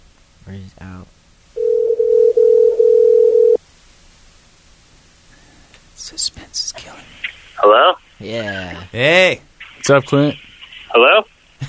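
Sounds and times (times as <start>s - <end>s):
speech: 0.5s - 1.2s, 6.1s - 11.6s
telephone dial tone while dialling a call: 1.6s - 3.6s.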